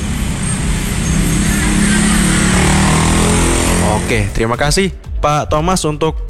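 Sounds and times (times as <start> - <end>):
slow road traffic with cars and motorcycles: 0.0 - 4.6
car and motorcycle engines rumbling: 0.0 - 4.7
speech: 4.1 - 6.2.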